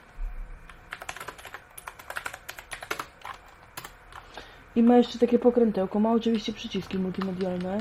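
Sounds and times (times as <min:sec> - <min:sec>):
computer keyboard keys clicking: 0:00.9 - 0:04.2, 0:06.3 - 0:07.7
speech: 0:04.8 - 0:07.7.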